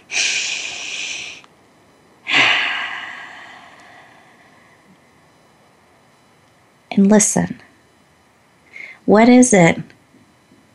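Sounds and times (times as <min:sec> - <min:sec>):
deep breaths during a guided mindfulness exercise: 0:00.0 - 0:01.5, 0:02.2 - 0:04.9, 0:08.7 - 0:09.0
speech: 0:07.0 - 0:07.7, 0:09.1 - 0:09.9.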